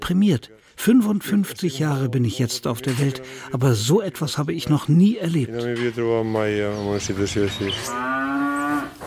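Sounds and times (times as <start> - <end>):
speech: 0.1 - 8.1
cows mooing with long deep lowing calls: 7.5 - 9.0.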